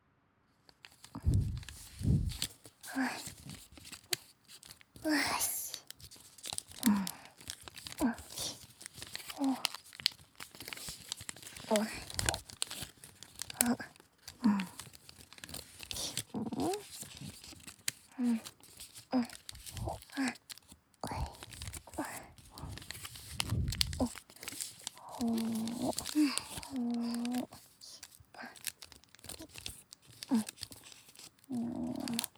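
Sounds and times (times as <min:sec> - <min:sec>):
origami paper crinkling and rustling as the sheet is handled: 0:00.7 - 0:32.3
finger sliding along a fold in folded origami paper: 0:00.8 - 0:04.8, 0:08.6 - 0:32.3
quiet voice sounds: 0:01.1 - 0:03.6, 0:05.0 - 0:05.9, 0:06.7 - 0:08.7, 0:09.3 - 0:09.8, 0:11.5 - 0:12.5, 0:13.4 - 0:15.0, 0:15.8 - 0:17.4, 0:19.1 - 0:20.4, 0:21.0 - 0:29.6, 0:30.2 - 0:30.6, 0:31.5 - 0:32.3.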